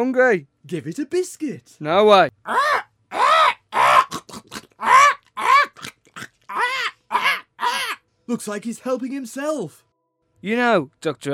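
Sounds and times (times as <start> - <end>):
speech: 0.0 - 2.9, 8.3 - 11.3
parrot squawking with harsh raspy calls: 2.4 - 8.0.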